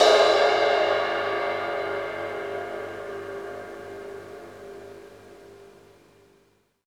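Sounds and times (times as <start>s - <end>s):
crash cymbals on a drumkit: 0.0s - 4.5s.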